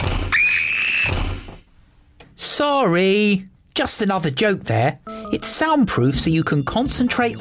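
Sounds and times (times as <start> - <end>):
shrill scream: 0.2 - 1.2
speech: 2.6 - 7.3.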